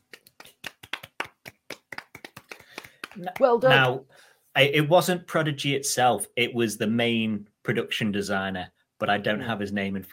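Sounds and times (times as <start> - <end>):
small group clapping hands: 0.0 - 4.0
speech: 3.2 - 10.1.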